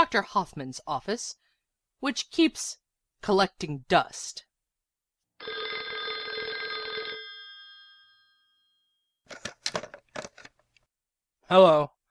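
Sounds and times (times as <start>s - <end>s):
speech: 0.0s - 1.4s, 2.0s - 4.5s, 11.5s - 12.0s
old-style telephone bell ringing: 5.4s - 9.1s.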